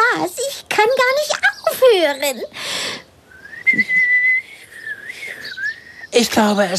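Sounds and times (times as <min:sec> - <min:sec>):
speech: 0:00.2 - 0:02.7, 0:03.7 - 0:04.0, 0:06.2 - 0:06.7
person whistling a sustained tone: 0:03.3 - 0:05.8.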